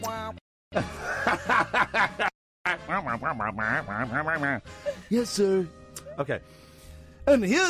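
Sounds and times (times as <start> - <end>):
speech: 0.1 - 6.6, 7.2 - 7.6
laughter: 0.8 - 5.0
cartoon teacher's garbled nasal wah-wah voice effect: 2.7 - 4.6.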